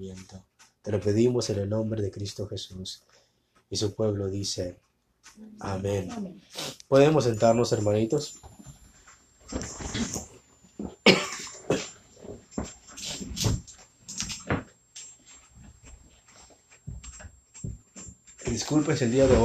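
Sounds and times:
speech: 0.0s - 8.5s, 9.5s - 10.2s, 18.8s - 19.4s
rustling and shuffling: 6.4s - 19.4s
person coughing: 11.0s - 12.0s.

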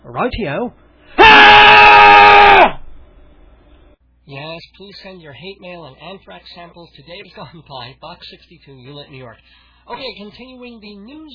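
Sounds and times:
speech: 0.1s - 2.8s, 4.3s - 11.3s
loud sustained human scream: 1.2s - 2.8s.

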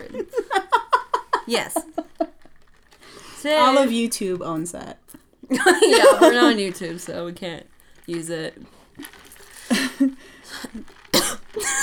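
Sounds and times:
laughter: 0.0s - 2.6s, 5.5s - 6.8s, 9.6s - 10.8s, 11.5s - 11.8s
speech: 0.1s - 0.4s, 1.5s - 2.0s, 3.4s - 9.2s, 10.0s - 10.8s
person coughing into a microphone: 11.2s - 11.8s.

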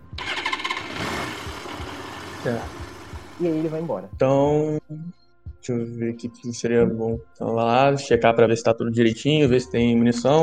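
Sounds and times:
motorcycle engine cranking and starting: 0.0s - 4.0s
speech: 2.4s - 2.8s, 3.4s - 10.4s.

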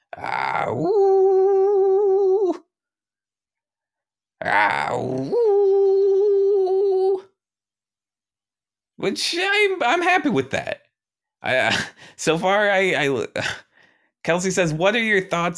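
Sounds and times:
speech: 0.1s - 1.2s, 4.9s - 5.6s, 9.0s - 10.8s, 11.4s - 15.5s
person imitating a wolf howling at the sky: 0.1s - 2.7s, 4.4s - 7.3s.

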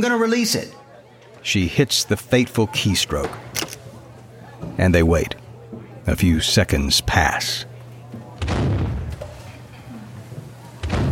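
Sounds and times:
speech: 0.0s - 0.8s, 1.4s - 3.8s, 4.8s - 5.4s, 6.1s - 7.7s
cannon blasts in an engineers' office: 8.4s - 9.1s.

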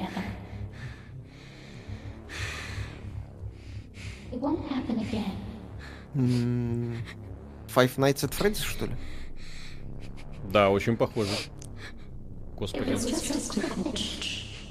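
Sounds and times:
heavy rasping breathing close to the ear: 0.0s - 7.7s, 8.8s - 10.5s, 11.1s - 12.4s
speech: 4.3s - 5.5s, 6.1s - 9.2s, 10.5s - 11.6s, 12.6s - 14.4s
loud voiced groan or murmur: 6.0s - 7.2s.

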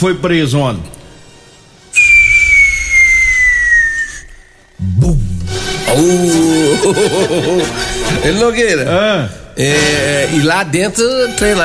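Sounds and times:
speech: 0.0s - 1.0s, 4.8s - 5.3s, 5.9s - 11.6s
firework rocket whistling as it launches: 2.0s - 4.6s
laughter: 6.4s - 8.4s.

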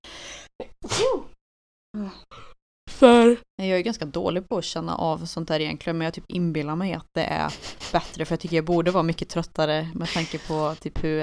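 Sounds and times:
person drawing quick breaths: 0.0s - 0.5s, 7.5s - 8.2s
person sneezing: 0.8s - 1.4s
speech: 3.0s - 11.2s.

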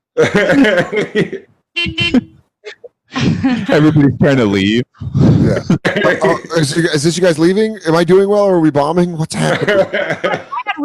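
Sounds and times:
speech: 0.2s - 2.2s, 3.5s - 10.5s
laughter: 0.2s - 4.1s, 5.3s - 7.0s, 9.4s - 10.8s
car horns honking: 1.7s - 2.5s.

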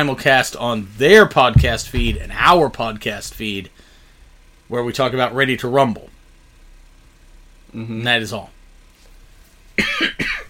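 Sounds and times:
speech: 0.0s - 3.9s, 4.7s - 6.1s, 7.7s - 8.6s, 9.8s - 10.4s
person coughing: 9.8s - 10.4s.

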